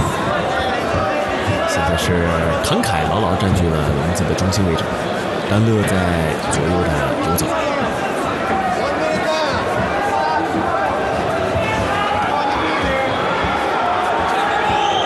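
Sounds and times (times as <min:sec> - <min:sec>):
scattered shouts in arena crowd: 0:00.0 - 0:02.0, 0:07.4 - 0:15.0
large arena crowd booing: 0:00.0 - 0:02.3, 0:07.4 - 0:15.0
speech: 0:01.9 - 0:07.7.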